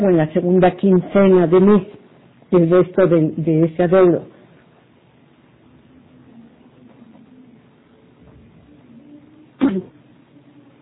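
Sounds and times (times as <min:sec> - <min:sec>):
speech: 0:00.0 - 0:04.4
woman on a phone call coughing: 0:09.6 - 0:10.0.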